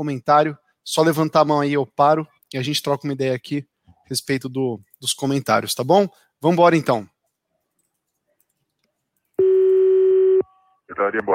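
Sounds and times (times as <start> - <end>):
speech: 0.0 - 7.1, 10.9 - 11.3
telephone busy tone after a dropped phone call: 9.4 - 10.5.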